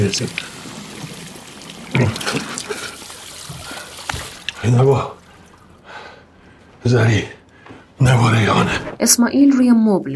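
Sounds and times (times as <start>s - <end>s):
water running into a sink as someone rinses their mouth: 0.0s - 5.8s
speech: 0.1s - 0.6s, 4.6s - 5.2s, 6.8s - 7.4s, 8.0s - 10.1s.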